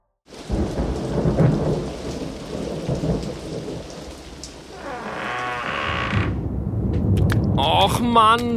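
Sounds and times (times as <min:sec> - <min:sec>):
deep rumbling thunder: 0:00.3 - 0:08.2
rising crackle: 0:00.3 - 0:08.5
sudden rain shower pouring down: 0:00.3 - 0:08.5
speech: 0:07.8 - 0:08.5.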